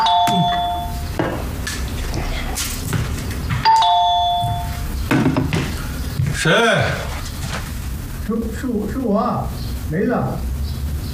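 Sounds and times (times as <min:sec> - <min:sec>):
doorbell chiming: 0:00.0 - 0:01.1, 0:03.6 - 0:04.9
low hum of room noise: 0:00.0 - 0:11.1
speech: 0:06.4 - 0:07.0, 0:08.3 - 0:10.5.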